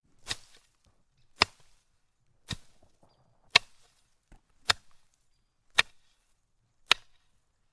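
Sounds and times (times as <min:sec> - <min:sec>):
cutting through foliage: 0:00.1 - 0:05.1.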